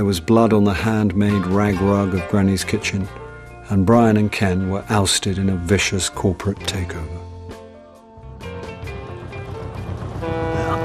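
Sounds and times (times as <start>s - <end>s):
speech: 0.0s - 7.2s
small boat engine chugging along a river: 8.6s - 10.8s.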